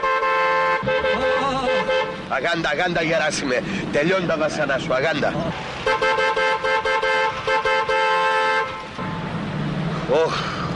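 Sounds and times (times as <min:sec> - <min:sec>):
car horn honking in short blasts: 0:00.0 - 0:02.5, 0:05.8 - 0:09.2
steady rumble of traffic: 0:00.0 - 0:10.7
speech: 0:02.3 - 0:06.3, 0:10.1 - 0:10.5.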